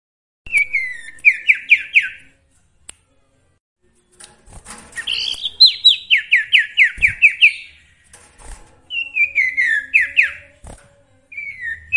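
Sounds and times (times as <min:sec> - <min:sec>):
sooty-headed bulbul song: 0:00.5 - 0:02.3, 0:05.0 - 0:08.2, 0:08.9 - 0:10.6, 0:11.3 - 0:11.9.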